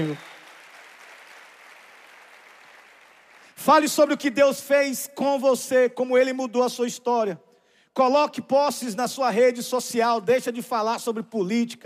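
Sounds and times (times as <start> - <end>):
speech: 0.0 - 0.3, 3.6 - 11.8
audience applauding at a Sunday church gathering: 0.0 - 3.6.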